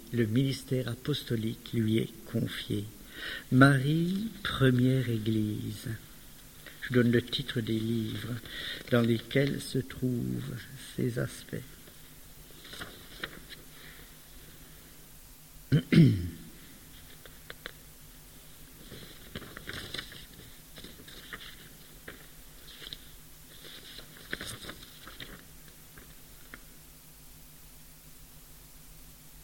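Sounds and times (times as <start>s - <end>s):
speech: 0.1s - 6.1s, 6.8s - 11.8s, 15.7s - 16.4s
paper rustling and crinkling while being shuffled: 6.6s - 9.9s, 11.7s - 14.0s, 16.9s - 17.8s, 18.7s - 26.7s.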